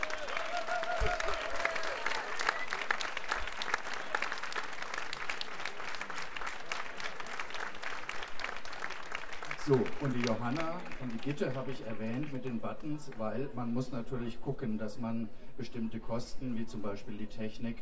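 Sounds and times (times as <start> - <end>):
crowd applause for the bands: 0.0 - 12.4
speech: 9.7 - 17.8.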